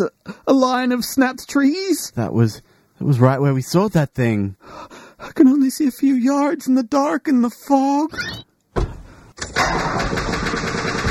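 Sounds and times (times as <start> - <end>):
speech: 0.0 - 8.5
dented car engine cranking without starting at night in fog: 9.4 - 11.1.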